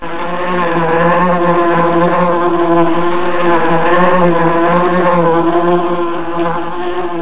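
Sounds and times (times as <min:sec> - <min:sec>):
house fly buzzing: 0:00.0 - 0:07.1.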